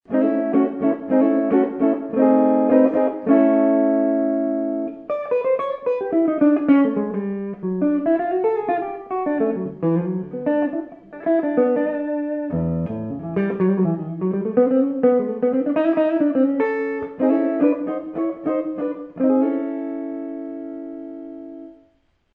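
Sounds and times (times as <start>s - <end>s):
electric guitar with neck pickup: 0.0s - 22.3s.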